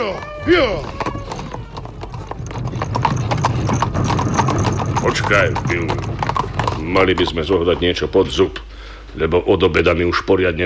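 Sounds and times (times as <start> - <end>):
speech: 0.0 - 1.0, 5.0 - 10.6
horse whinny: 0.0 - 7.2
horse hooves clip-clopping on a side street: 0.0 - 8.6.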